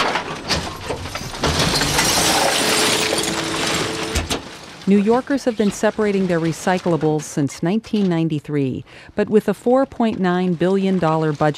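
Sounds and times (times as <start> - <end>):
garbage truck mechanical grinding and rumble: 0.0 - 6.8
glass bottles and cans clattering during recycling collection: 0.0 - 7.3
speech: 4.9 - 11.5.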